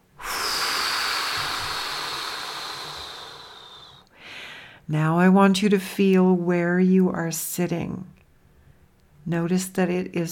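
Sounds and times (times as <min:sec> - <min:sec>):
long steady exhale through the mouth during a guided breathing exercise: 0:00.1 - 0:04.8
speech: 0:04.9 - 0:08.2, 0:09.2 - 0:10.3.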